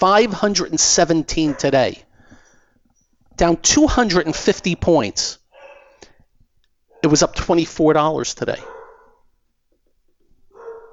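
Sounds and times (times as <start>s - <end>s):
speech: 0.0s - 2.1s, 3.4s - 5.4s, 7.0s - 8.7s
dogs barking: 1.3s - 2.1s, 5.5s - 6.2s, 6.9s - 7.3s, 8.5s - 9.3s, 10.5s - 10.9s.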